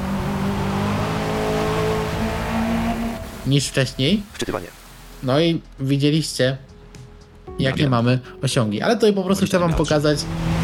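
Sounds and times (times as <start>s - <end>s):
aggressive car engine revving in a racing video game: 0.0s - 4.3s, 10.0s - 10.6s
speech: 3.5s - 6.7s, 7.6s - 10.5s.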